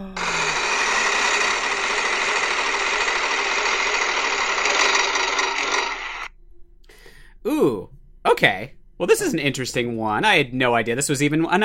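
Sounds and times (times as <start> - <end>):
large wall-mounted prize wheel spinning: 0.2 - 6.3
speech: 8.4 - 11.6.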